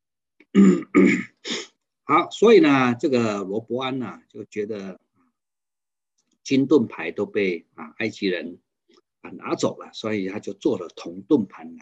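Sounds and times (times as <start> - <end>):
person coughing: 0.6 - 1.7
throat clearing: 0.6 - 1.7
speech: 0.6 - 5.0, 6.5 - 8.6, 9.2 - 11.8.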